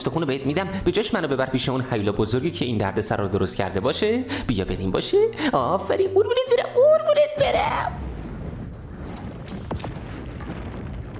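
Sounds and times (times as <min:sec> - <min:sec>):
speech: 0:00.0 - 0:08.1
dense rumbling wash of noise: 0:07.4 - 0:11.1
sharp cracks: 0:07.5 - 0:11.1
gunshot blast: 0:08.0 - 0:11.1.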